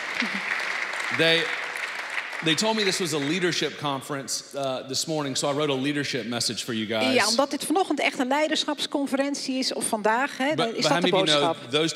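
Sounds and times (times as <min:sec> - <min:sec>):
crowd applauding: 0:00.0 - 0:04.1
speech: 0:00.2 - 0:00.5, 0:01.1 - 0:01.6, 0:02.4 - 0:11.9.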